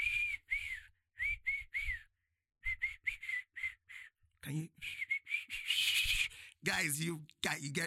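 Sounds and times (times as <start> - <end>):
person whistling a pop song hook: 0.0 - 4.2, 4.8 - 6.3
speech: 4.4 - 5.0, 6.6 - 7.8.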